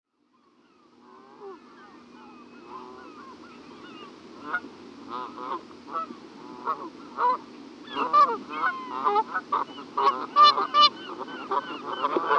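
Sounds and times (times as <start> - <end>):
Canada geese (Branta canadensis) honking: 1.0 - 12.3.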